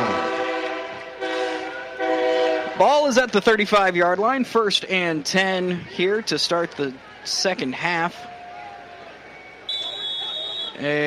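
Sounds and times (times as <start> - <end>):
train horn blaring as a train passes near a football stadium: 0.0 - 2.9
speech: 2.8 - 8.3, 10.8 - 11.0.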